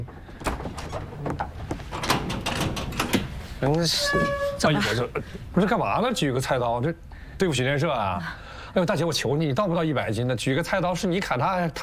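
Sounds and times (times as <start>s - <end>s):
door being opened with knocking clunks: 0.0s - 4.8s
door handle rattling: 0.3s - 3.4s
speech: 3.6s - 11.8s.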